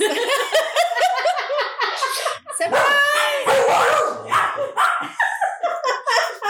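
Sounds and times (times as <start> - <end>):
people laughing loudly: 0.0 - 3.4, 4.5 - 6.4
female dog barking and yelping: 2.7 - 5.2.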